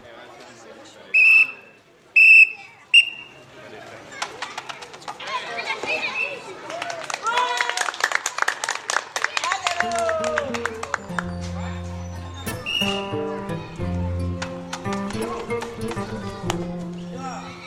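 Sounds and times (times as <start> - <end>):
outdoor football crowd voices and shouts: 0.0 - 7.9, 9.2 - 17.6
referee whistle blasts at a football match: 1.2 - 3.4, 12.5 - 13.3
outdoor football crowd clapping: 4.1 - 11.6, 14.2 - 16.8.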